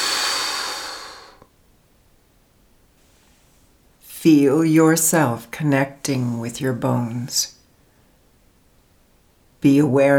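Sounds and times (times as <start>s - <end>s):
long breath blown out through the mouth during a relaxation exercise: 0.0s - 1.4s
speech: 4.2s - 7.6s, 9.6s - 10.1s.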